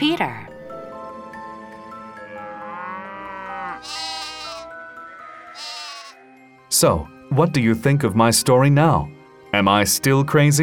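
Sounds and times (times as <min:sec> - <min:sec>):
sheep bleating: 0:02.7 - 0:06.2
speech: 0:06.8 - 0:10.6.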